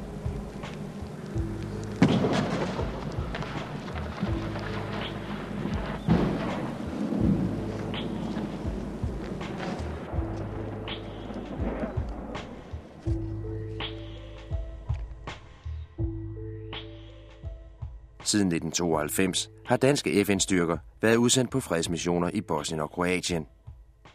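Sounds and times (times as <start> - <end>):
deep thunder rumbling with sharp cracks: 0.0 - 14.6
steady low drone: 0.0 - 17.4
speech: 18.3 - 23.6.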